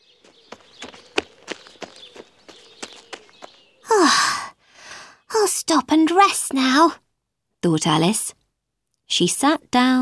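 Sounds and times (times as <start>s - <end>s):
quick running footsteps: 0.0s - 3.9s
speech: 5.7s - 7.0s, 7.6s - 8.4s, 9.2s - 9.9s.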